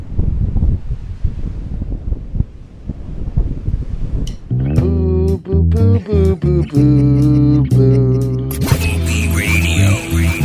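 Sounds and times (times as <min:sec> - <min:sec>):
strong wind buffeting the microphone outdoors on a freezing night: 0:00.0 - 0:05.2
laughter: 0:06.1 - 0:10.4.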